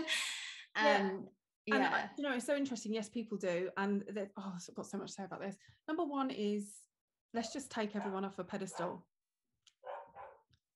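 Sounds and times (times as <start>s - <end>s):
speech: 0.8s - 9.1s
medium-sized dog barking: 8.0s - 9.0s, 9.8s - 10.5s.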